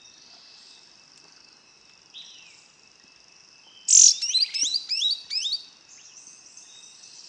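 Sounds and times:
Yellow-green grosbeak Caryothraustes canadensis brasiliensis calls: 3.8s - 5.7s.

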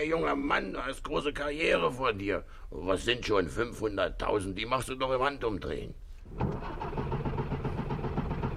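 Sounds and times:
speech: 0.0s - 6.8s
car engine cranking, failing to start: 6.3s - 8.5s.

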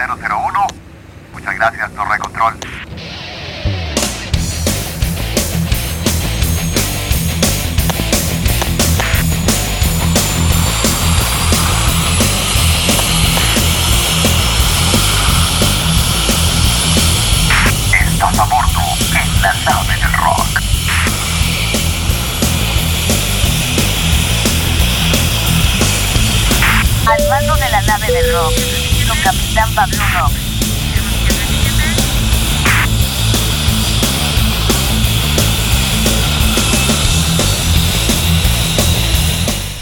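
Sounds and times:
aircraft taking off with engine roar: 0.0s - 39.8s
speech: 0.1s - 0.6s, 1.6s - 3.2s, 28.2s - 30.4s
low pulsing hum: 4.7s - 39.8s
brief higher tone: 27.1s - 29.4s.

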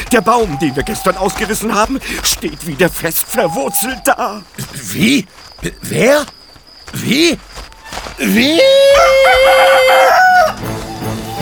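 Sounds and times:
speech: 0.1s - 7.6s, 8.2s - 10.3s
rooster crowing at night in a village: 8.4s - 11.4s.

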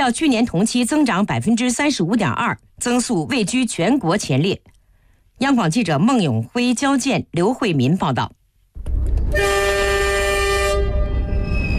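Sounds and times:
speech: 0.0s - 4.7s, 5.4s - 8.4s, 9.3s - 9.8s
loaded freight train pulling out of a land port in Lanzhou, Gansu: 8.8s - 11.7s
freight train horn blast at a land port in Lanzhou, Gansu: 9.3s - 11.7s.

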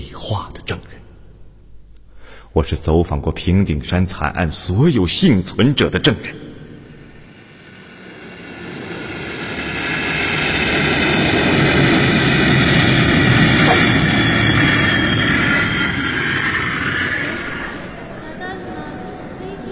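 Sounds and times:
speech: 2.6s - 6.4s
aircraft engine noise at an airport: 6.4s - 19.7s.

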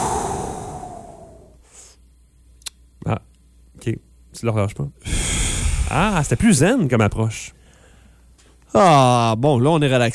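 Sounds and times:
people catching their breath together: 0.0s - 1.6s, 5.0s - 6.1s
speech: 3.1s - 5.3s, 5.9s - 7.6s, 8.7s - 10.1s.

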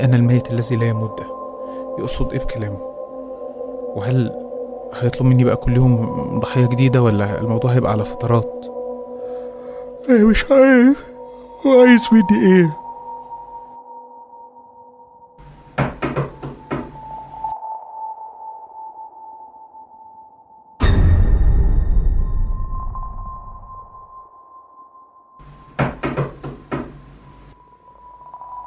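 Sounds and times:
speech: 0.0s - 1.4s, 2.0s - 2.9s, 3.9s - 8.7s, 10.0s - 12.8s
sharp knocking on a door: 15.8s - 17.0s, 25.8s - 27.0s
heavy booming hit: 20.8s - 23.7s.

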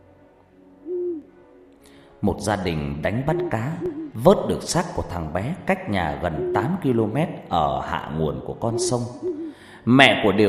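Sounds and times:
owl hooting at night: 0.8s - 1.2s, 3.1s - 4.4s, 6.1s - 7.0s, 8.6s - 9.7s
speech: 2.2s - 10.4s.

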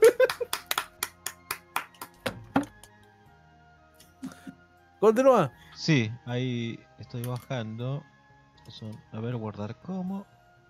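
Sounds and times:
hand claps: 0.0s - 3.0s
speech: 5.0s - 8.1s, 8.7s - 10.3s.

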